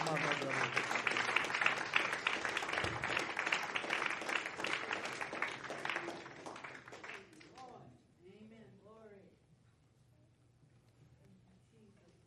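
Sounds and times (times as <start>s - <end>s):
crowd applauding: 0.0s - 7.7s.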